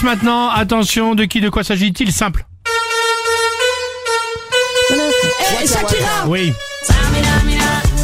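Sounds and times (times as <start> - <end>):
speech: 0.0 - 2.5, 4.9 - 7.5
car horns honking a song melody: 2.6 - 7.9.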